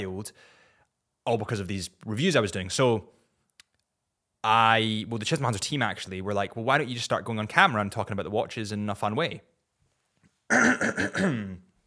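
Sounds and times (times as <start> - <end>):
speech: 0.0 - 0.6, 1.3 - 3.2, 4.4 - 9.5, 10.5 - 11.7
raspy cough or throat-clearing: 10.5 - 11.6.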